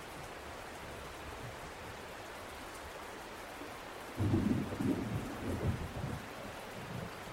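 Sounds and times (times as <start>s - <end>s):
steady rainfall: 0.0s - 7.3s
low rolling thunder: 4.2s - 6.3s.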